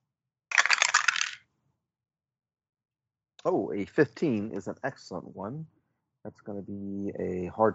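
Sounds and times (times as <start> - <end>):
dice rattling and clattering during a tabletop role-playing game roll: 0.5 - 1.4
speech: 3.4 - 7.7.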